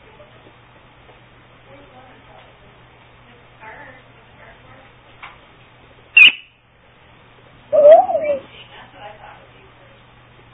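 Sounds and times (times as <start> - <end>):
owl call with wavering hooting cry: 6.2 - 6.4, 7.7 - 8.5.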